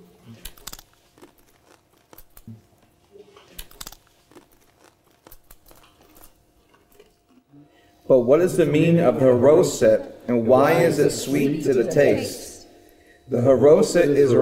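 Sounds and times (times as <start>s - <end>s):
bitter herb crunching while chewed: 0.0s - 7.5s
speech: 8.1s - 12.4s, 13.3s - 14.3s.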